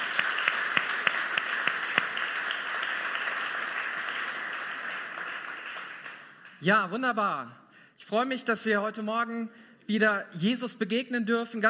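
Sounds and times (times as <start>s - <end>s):
audience applauding: 0.0s - 6.6s
speech: 6.6s - 11.6s.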